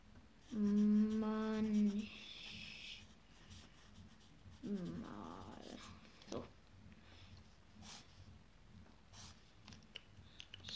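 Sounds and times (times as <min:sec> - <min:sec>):
squeaky scratching strokes of writing something down: 0:00.4 - 0:06.5, 0:07.3 - 0:08.4, 0:09.1 - 0:09.6.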